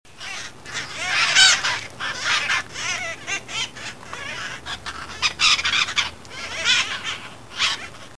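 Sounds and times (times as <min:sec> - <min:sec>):
parrot harsh chattering squawks: 0:00.2 - 0:08.1.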